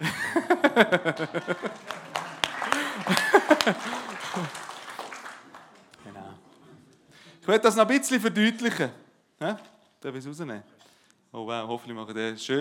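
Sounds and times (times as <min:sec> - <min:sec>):
bursts of laughter: 0:00.0 - 0:05.4
small audience clapping to welcome an invited pastry chef: 0:00.6 - 0:06.4
speech: 0:00.7 - 0:02.0, 0:07.5 - 0:12.5.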